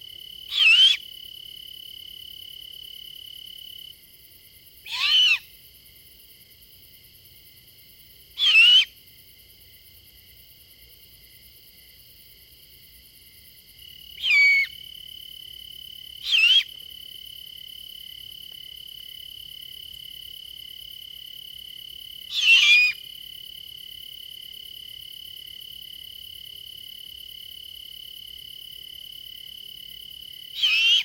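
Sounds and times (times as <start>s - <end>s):
faint steady high insect-like drone: 0.0s - 31.0s
young great horned owl screeching whistles: 0.5s - 1.0s, 4.9s - 5.5s, 8.4s - 8.9s, 14.2s - 14.8s, 16.2s - 16.7s, 22.3s - 23.0s, 30.6s - 31.0s.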